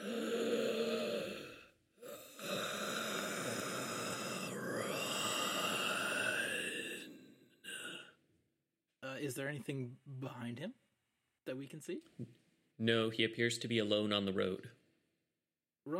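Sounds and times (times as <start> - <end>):
voice imitating the raspy gasp of a skeleton: 0.0 - 8.2
speech: 9.2 - 10.8, 11.4 - 14.8.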